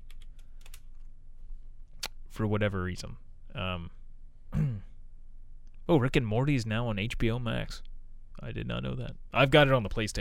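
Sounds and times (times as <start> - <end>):
typing on a computer keyboard: 0.0 - 1.1
low steady hum: 0.0 - 10.1
speech: 2.4 - 4.7, 5.9 - 10.1.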